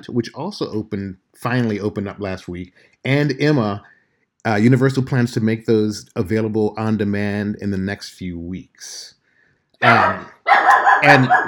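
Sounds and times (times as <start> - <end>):
speech: 0.0 - 9.2, 9.8 - 10.4, 11.0 - 11.4
dog barking excitedly at someone walking past a condo: 9.8 - 11.4.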